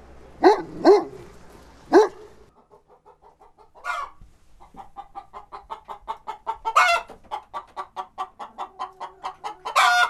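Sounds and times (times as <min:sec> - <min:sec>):
Bernese mountain dogs barking on a farm: 0:00.4 - 0:02.5
chickens clucking and squawking: 0:00.4 - 0:10.0.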